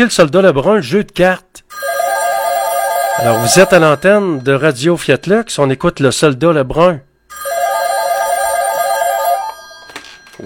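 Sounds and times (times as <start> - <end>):
speech: 0.0 - 2.0, 3.2 - 7.5
telephone ringing in a radio station studio: 1.7 - 5.0, 7.3 - 10.4.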